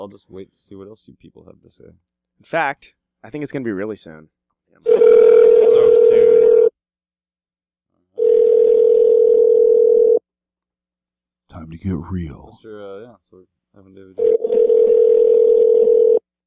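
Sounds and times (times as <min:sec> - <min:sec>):
speech: 0:00.0 - 0:05.2, 0:11.5 - 0:16.0
telephone dial tone while placing a call: 0:04.9 - 0:06.7, 0:08.2 - 0:10.2, 0:14.2 - 0:16.2.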